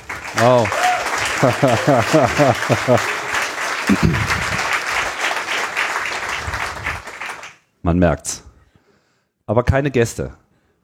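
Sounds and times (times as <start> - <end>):
live audience applauding: 0.0 - 7.7
speech: 0.4 - 0.8, 1.4 - 3.2, 7.9 - 8.4, 9.5 - 10.4
person cheering: 0.4 - 4.6
laughter: 1.2 - 4.9.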